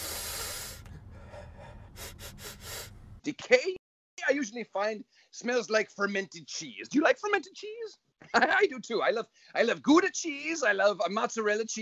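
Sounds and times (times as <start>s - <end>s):
long airy rush of breath: 0.0s - 3.1s
person sniffing: 0.0s - 3.1s
speech: 3.2s - 11.8s.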